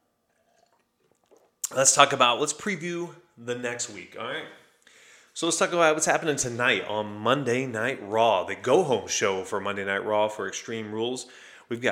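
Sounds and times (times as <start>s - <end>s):
person sipping a drink with small slurps and swallows: 0.2s - 1.8s
speech: 1.7s - 4.6s, 5.4s - 11.8s.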